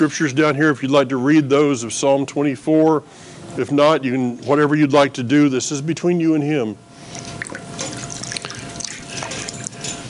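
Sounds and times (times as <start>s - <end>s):
speech: 0.0s - 7.4s
water splashing in a basin as hands are rinsed: 7.1s - 9.7s
water plinks and trickles: 7.1s - 10.0s.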